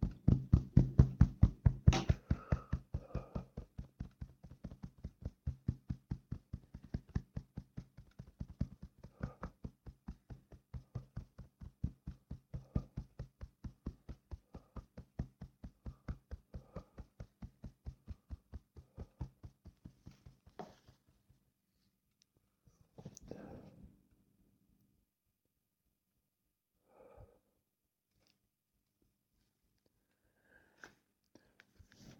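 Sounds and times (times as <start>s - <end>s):
rapid finger tapping: 0.0s - 20.8s.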